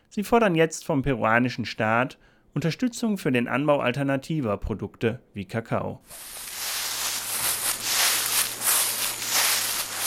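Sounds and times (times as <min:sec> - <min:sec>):
speech: 0:00.2 - 0:06.6
drying coca leaves rustling and crackling: 0:06.1 - 0:10.0.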